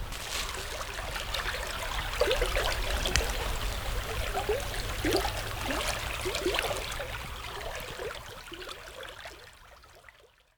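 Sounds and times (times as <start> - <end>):
clear water flowing in an irrigation channel in a village in Japan: 0.0 - 10.5.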